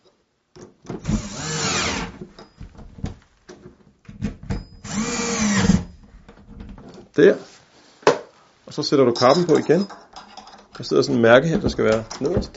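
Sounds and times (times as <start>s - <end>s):
screwdriver whirring while tightening door handle screws: 1.0s - 2.2s, 4.8s - 5.9s
speech: 7.2s - 7.5s, 8.7s - 10.0s, 10.8s - 12.5s.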